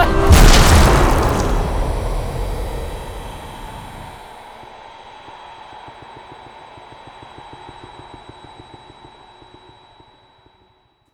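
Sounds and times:
gunshot: 0.1 - 4.4.

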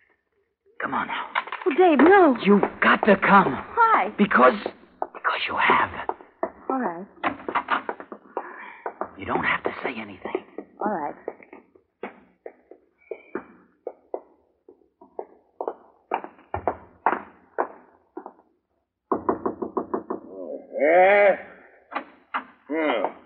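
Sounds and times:
speech: 0.8 - 6.0, 6.8 - 7.2, 9.2 - 11.3
knocking on a front door: 1.8 - 13.2, 15.0 - 18.4, 19.1 - 20.4
voiced bleat-like vocal sounds: 20.3 - 21.8.

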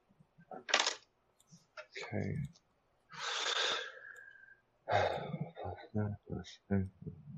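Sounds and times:
dice rolling across a tabletop: 0.6 - 1.0
speech: 2.1 - 2.6, 4.9 - 7.3.

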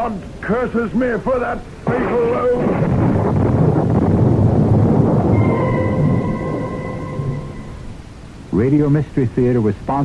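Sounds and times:
speech: 0.0 - 3.5, 8.6 - 10.0
loud deep rolling thunder: 1.9 - 8.4
stormy wind noise: 1.9 - 8.5
faint steady high tones: 5.3 - 8.5.

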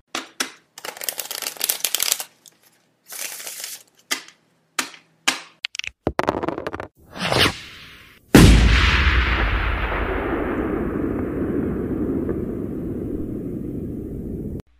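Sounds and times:
rapid card shuffling: 0.8 - 4.3
clattering dice rolls: 5.6 - 6.9
firework boom that rumbles and crackles: 8.3 - 14.6.

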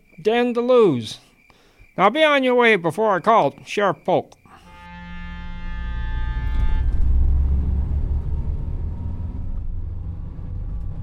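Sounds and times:
speech: 0.2 - 1.2, 2.0 - 4.4
road noise of car rolling slowly in the Ozark Mountains of Missouri: 4.5 - 11.0
car engine rumbling: 4.9 - 11.0.

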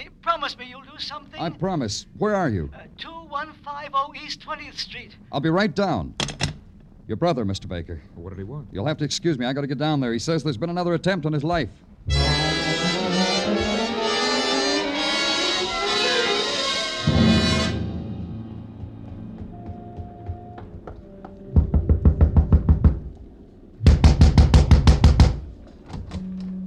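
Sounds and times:
speech: 0.4 - 6.4, 7.1 - 12.6
music: 12.1 - 23.1
light knocking on a door: 21.6 - 23.1, 23.9 - 25.5.

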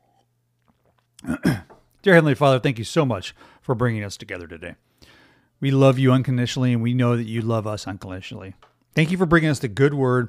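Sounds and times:
person sipping coffee: 0.0 - 1.9
speech: 1.2 - 10.2.

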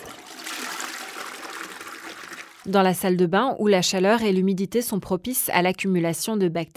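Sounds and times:
toilet flushing with rushing gush of water: 0.0 - 3.0
speech: 2.6 - 6.7.

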